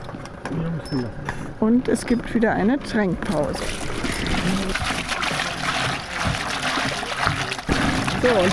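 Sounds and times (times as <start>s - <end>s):
speech: 0.6s - 4.7s, 8.2s - 8.5s
water poured over a horse's back: 3.2s - 8.5s.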